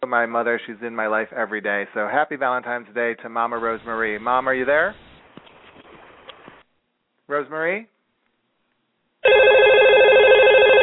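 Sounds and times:
speech: 0.1 - 5.1, 7.3 - 7.9
telephone ringing with a bright electronic warble: 9.2 - 10.8.

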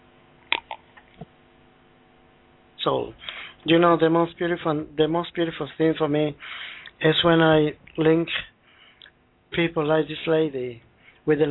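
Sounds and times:
person sipping water: 0.5 - 1.3
person swallowing: 0.5 - 1.3
speech: 2.8 - 8.5, 9.5 - 11.5.

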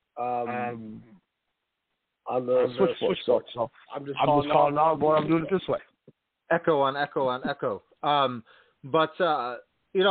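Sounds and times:
band-limited voice over a phone line with echo: 0.2 - 0.9, 4.2 - 5.7
speech: 0.2 - 1.1, 2.3 - 5.9, 6.5 - 10.0.

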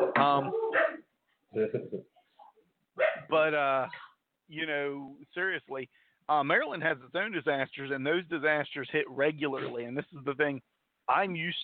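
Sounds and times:
dog barking and yelping: 0.0 - 1.1, 3.0 - 3.3
speech: 0.2 - 0.8, 1.5 - 2.1, 3.3 - 11.6.

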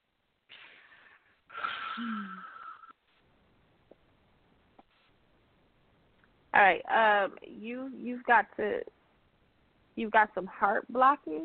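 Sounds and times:
deep breath during a spiritual healing session: 0.5 - 2.9
speech: 2.0 - 2.5, 6.6 - 9.0, 10.0 - 11.4.

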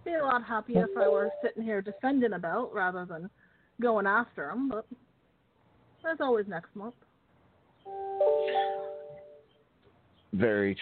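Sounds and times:
speech: 0.1 - 5.0, 6.0 - 7.1, 7.9 - 8.9, 10.3 - 10.8
two bell tones chiming: 7.9 - 9.4.

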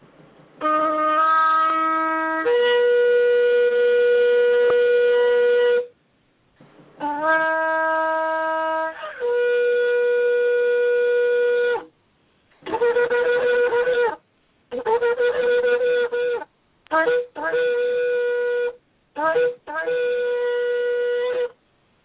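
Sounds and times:
shofar sounded during a prayer: 0.6 - 6.0, 7.0 - 11.9, 12.6 - 21.6.

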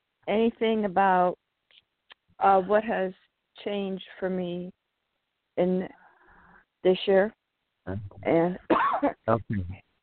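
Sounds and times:
speech: 0.3 - 1.4, 2.4 - 4.8, 5.6 - 6.0, 6.8 - 9.8
person coughing: 8.7 - 9.6.

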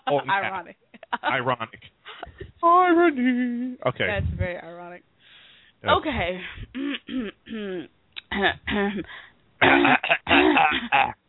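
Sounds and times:
speech: 0.1 - 5.1, 5.8 - 11.2
person clearing throat: 6.7 - 11.2.

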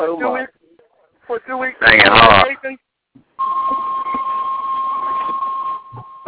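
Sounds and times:
speech: 1.4 - 2.8
loud steady electronic beep tone: 3.4 - 6.2.

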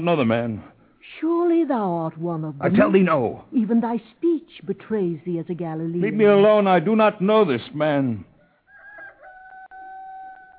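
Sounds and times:
speech: 0.0 - 8.3
rooster crowing: 8.4 - 10.5.

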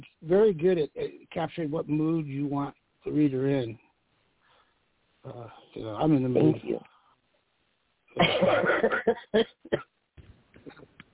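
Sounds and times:
speech: 0.2 - 3.8, 5.2 - 6.9, 8.2 - 9.8
person coughing: 8.2 - 9.9.

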